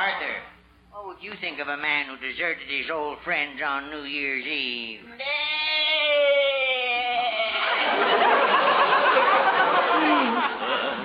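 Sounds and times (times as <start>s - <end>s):
speech: 1.2s - 5.8s
goat bleating in a long wavering cry: 5.2s - 7.6s
loud audience laughter: 7.5s - 11.0s.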